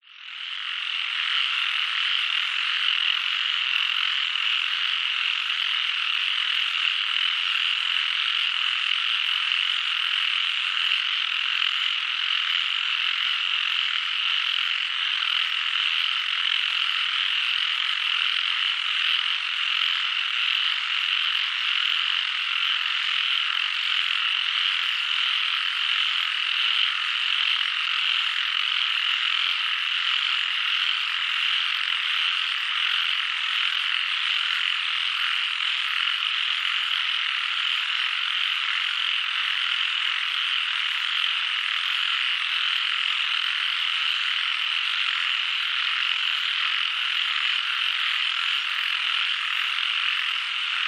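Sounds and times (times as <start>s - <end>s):
frogs chorus in Doi Suthep National Park Thailand: 0.0s - 50.8s.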